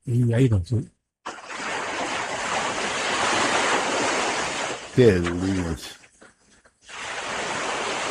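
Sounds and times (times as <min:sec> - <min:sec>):
speech: 0:00.1 - 0:01.0, 0:05.0 - 0:06.0
water lapping at a riverbank: 0:01.2 - 0:08.0.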